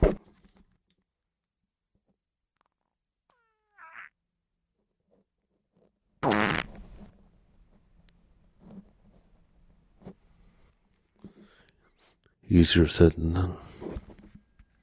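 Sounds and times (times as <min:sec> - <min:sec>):
loud blaring fart: 0:03.3 - 0:04.1, 0:06.2 - 0:06.8
speech: 0:12.5 - 0:13.7.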